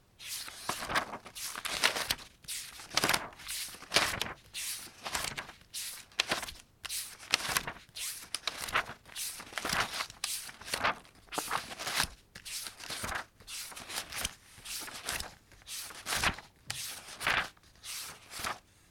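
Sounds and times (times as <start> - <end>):
notebook pages turning: 0.2 - 18.6.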